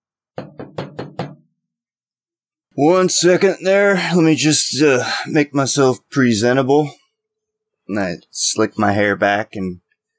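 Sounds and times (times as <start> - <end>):
firm knocking on a door: 0.3 - 1.5
speech: 2.8 - 7.0, 7.9 - 9.8.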